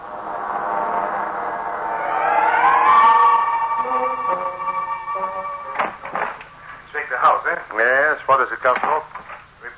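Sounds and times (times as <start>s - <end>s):
siren wailing: 0.1s - 6.8s
speech: 8.3s - 9.1s.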